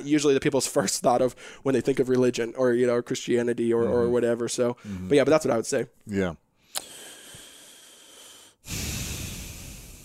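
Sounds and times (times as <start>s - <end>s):
speech: 0.0s - 6.9s
deep breaths: 1.4s - 1.7s, 4.8s - 5.1s, 6.6s - 10.0s.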